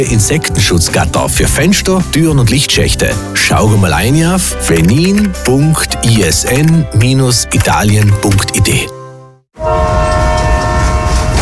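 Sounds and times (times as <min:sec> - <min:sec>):
speech: 0:00.0 - 0:09.0
train horn on a regional railway in South Tyrol: 0:09.6 - 0:11.3
train rolling past with continuous rail rumble: 0:09.6 - 0:11.3.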